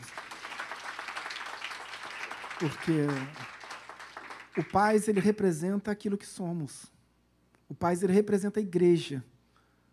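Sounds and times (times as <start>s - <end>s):
church audience applauding at a prayer service: 0.0s - 5.4s
speech: 2.6s - 3.6s, 4.6s - 7.0s, 7.7s - 9.3s.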